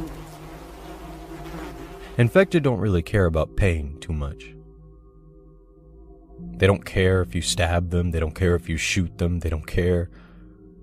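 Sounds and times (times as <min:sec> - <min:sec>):
dense swarm of flies buzzing: 0:00.0 - 0:02.5
speech: 0:02.2 - 0:04.6, 0:06.6 - 0:10.2.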